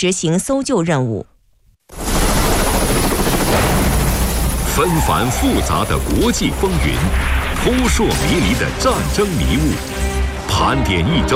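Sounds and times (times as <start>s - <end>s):
speech: 0.0s - 1.3s, 4.8s - 11.3s
UH-60M Black Hawk helicopter flying: 1.9s - 10.2s.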